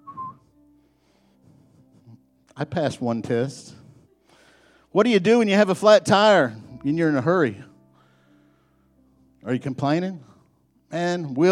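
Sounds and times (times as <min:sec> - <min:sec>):
person whistling: 0:00.0 - 0:00.6
speech: 0:02.6 - 0:03.8, 0:05.0 - 0:07.7, 0:09.4 - 0:10.3, 0:10.9 - 0:11.5.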